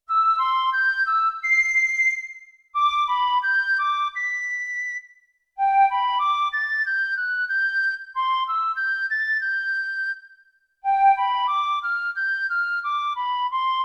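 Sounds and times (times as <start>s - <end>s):
wide sampled piccolo: 0.0s - 5.0s, 5.6s - 10.2s, 10.8s - 13.8s.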